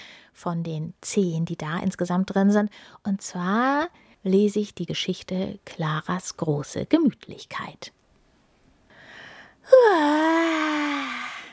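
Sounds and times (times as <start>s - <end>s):
speech: 0.4s - 8.0s, 9.7s - 10.8s
person yawning, bored: 9.7s - 11.5s.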